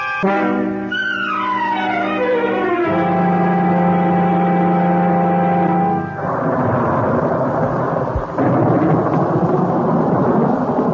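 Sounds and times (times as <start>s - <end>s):
sustained musical chord: 0.1s - 6.2s
loud steady roar of rain: 1.6s - 10.9s
rolling thunder: 4.9s - 10.9s
sharp thunderclap: 5.9s - 10.9s.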